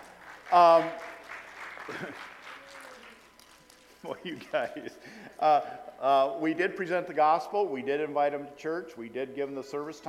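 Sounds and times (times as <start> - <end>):
crowd cheering: 0.0 - 3.4
many people clapping in a large room: 0.0 - 4.5
speech: 0.5 - 1.1, 1.9 - 2.3, 4.0 - 10.0.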